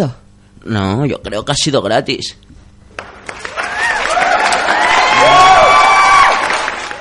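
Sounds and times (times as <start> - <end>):
speech: 0.0 - 2.5
crowd applauding after a joke: 3.0 - 6.9.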